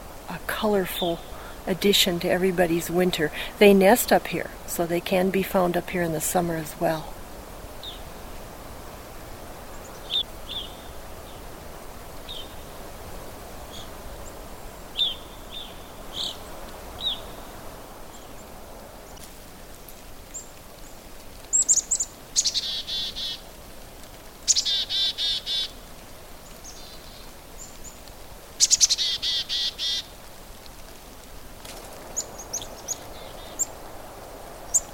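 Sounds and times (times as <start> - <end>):
faint outdoor ambient hiss: 0.0 - 34.9
small flock of chickadees calling: 0.6 - 7.1, 7.8 - 8.4, 9.6 - 11.5, 13.7 - 18.5, 21.5 - 23.5, 24.4 - 25.8, 28.6 - 30.2, 32.0 - 33.8
speech: 0.6 - 7.2.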